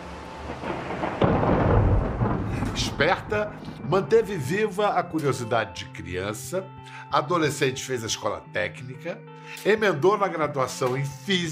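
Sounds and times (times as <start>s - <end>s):
steady rain hissing in a forest thunderstorm: 0.0s - 4.5s
thunderclap and deep rumble from a forest thunderstorm: 0.0s - 4.9s
speech: 2.8s - 11.5s.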